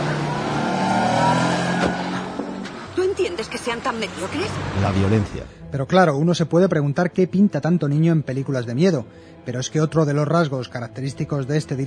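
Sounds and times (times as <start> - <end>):
car engine accelerating away: 0.0 - 5.6
speech: 3.4 - 11.8.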